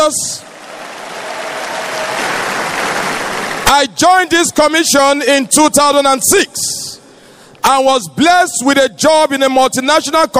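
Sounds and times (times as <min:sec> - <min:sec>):
speech: 0:00.1 - 0:00.4, 0:03.7 - 0:06.8, 0:07.6 - 0:10.3
large crowd applauding: 0:00.4 - 0:03.7.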